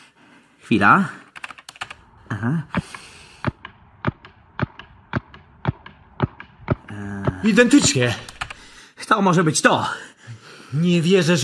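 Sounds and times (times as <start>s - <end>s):
speech: 0.7s - 1.2s, 2.4s - 3.0s, 7.4s - 8.3s, 9.1s - 10.1s, 10.7s - 11.4s
paintball marker shots: 2.8s - 8.6s.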